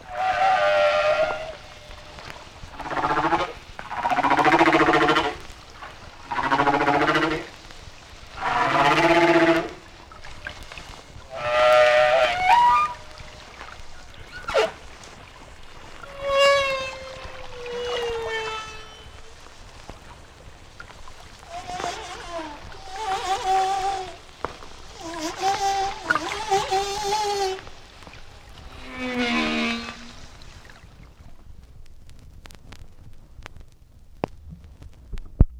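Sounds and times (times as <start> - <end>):
humpback whale song in shallow water: 0.0 - 31.4.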